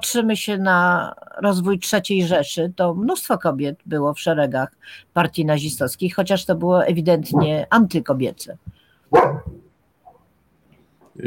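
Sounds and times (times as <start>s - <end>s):
speech: 0.1s - 9.6s
single dog barking: 9.1s - 9.7s.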